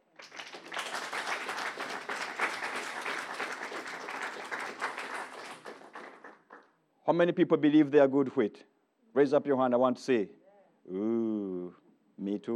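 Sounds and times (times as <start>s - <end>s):
church audience clapping: 0.0s - 6.7s
speech: 7.1s - 12.5s.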